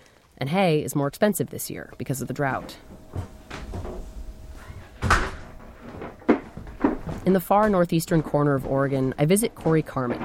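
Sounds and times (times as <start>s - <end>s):
speech: 0.4s - 3.3s, 7.2s - 10.2s
quiet shuffling: 2.0s - 10.2s
wooden front door of a home in far northeastern Oregon opening: 3.1s - 7.3s.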